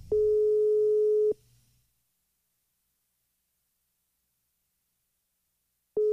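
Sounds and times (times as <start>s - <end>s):
telephone ringback tone on an unanswered call: 0.1s - 1.4s, 6.0s - 6.1s.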